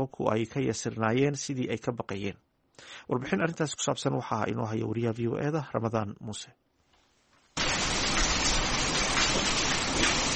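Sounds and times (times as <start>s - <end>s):
speech: 0.0s - 6.6s
heavy rain falling over the city of Djibouti: 7.6s - 10.3s.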